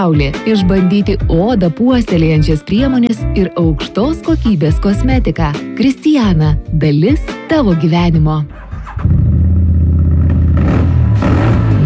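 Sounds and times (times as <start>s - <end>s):
speech: 0.0s - 8.6s
motorcycle engine revving: 8.5s - 11.8s.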